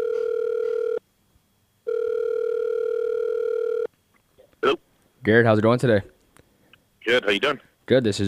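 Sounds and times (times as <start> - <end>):
electronic telephone dial tone while placing a call: 0.0 - 1.0, 1.9 - 3.9
speech: 5.2 - 6.1, 7.1 - 8.2.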